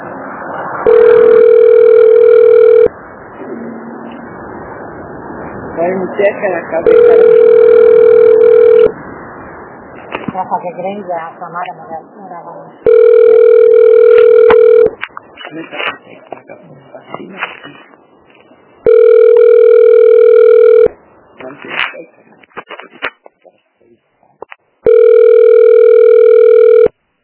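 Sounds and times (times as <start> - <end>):
electronic telephone ringing: 0.8 - 2.9, 6.8 - 8.9, 12.8 - 15.0, 18.8 - 21.0, 24.8 - 26.9
speech: 5.8 - 7.6, 10.4 - 12.9, 15.5 - 17.8.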